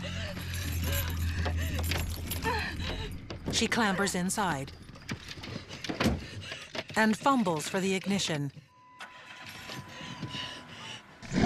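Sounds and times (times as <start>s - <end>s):
car keys jangling as pulled from behind an SUV gas tank door: 0.0s - 8.2s
speech: 3.5s - 5.2s, 7.0s - 8.6s.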